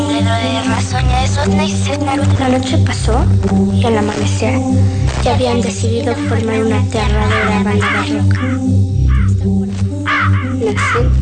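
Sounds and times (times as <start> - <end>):
speech: 0.8 - 9.6, 10.6 - 11.2
crows cawing: 7.1 - 11.2.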